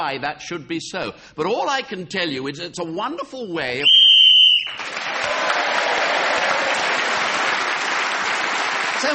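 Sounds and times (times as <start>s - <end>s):
speech: 0.0s - 4.1s, 9.0s - 9.1s
short sharp whistle blast ending a speaker's turn: 3.8s - 4.8s
audience applause: 4.5s - 9.1s.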